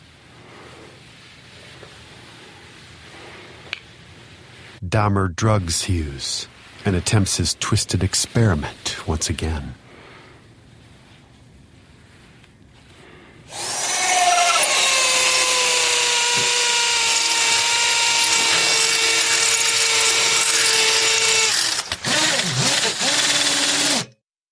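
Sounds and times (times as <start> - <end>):
speech: 4.8 - 9.8
power tool like an electric saw or drill whining: 13.5 - 24.2.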